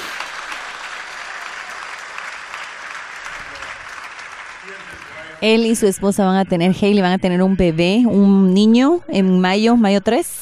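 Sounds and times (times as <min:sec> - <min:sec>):
crowd applauding: 0:00.0 - 0:05.8
speech: 0:05.4 - 0:10.4.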